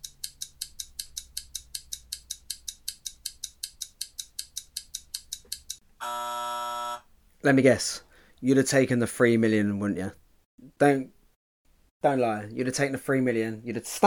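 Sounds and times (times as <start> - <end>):
fast countdown clock ticking: 0.0 - 5.8
loud sustained buzzer-like tone: 6.0 - 7.0
speech: 7.4 - 10.2, 10.8 - 11.2, 12.0 - 14.0.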